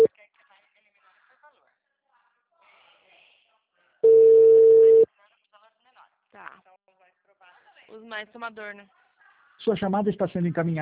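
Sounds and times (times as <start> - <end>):
steady mid-pitched telephone tone: 4.0 - 5.1
speech: 7.9 - 9.0, 9.6 - 10.8.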